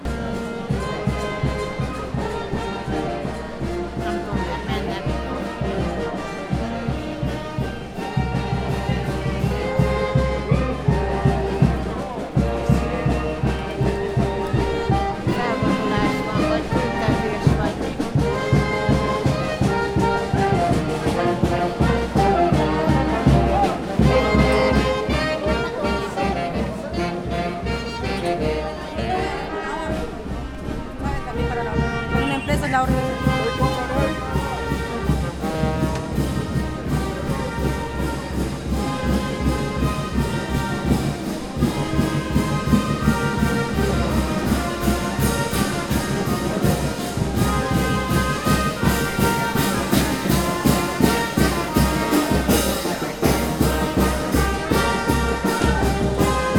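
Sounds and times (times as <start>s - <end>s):
protest with music: 0.0s - 56.5s.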